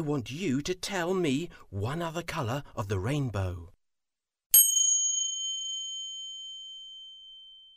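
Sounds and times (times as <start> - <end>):
speech: 0.0 - 3.8
small bell chiming: 4.6 - 7.7.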